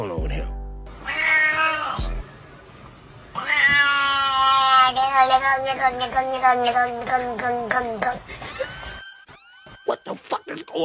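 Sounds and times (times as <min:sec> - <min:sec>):
cat meowing in speech-like warbling yowls: 0:01.0 - 0:02.2, 0:03.3 - 0:08.2
speech: 0:05.3 - 0:08.6.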